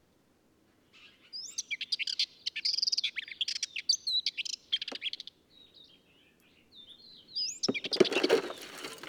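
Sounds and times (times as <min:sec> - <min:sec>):
Ménétries's warbler singing from a clifftop: 0:01.0 - 0:08.0.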